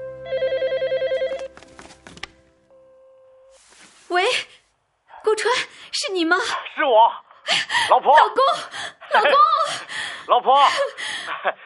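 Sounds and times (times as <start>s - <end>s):
telephone ringing with a rapid warbling electronic trill: 0.2s - 1.6s
speech: 5.4s - 11.6s.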